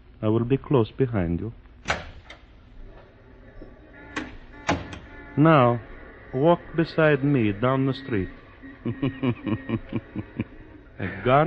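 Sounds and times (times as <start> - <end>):
low steady hum: 0.0 - 11.4
speech: 0.2 - 1.6, 5.4 - 11.4
door clunk: 1.8 - 2.5, 3.6 - 5.1
door latch click: 1.8 - 2.5
laughter: 8.0 - 11.4.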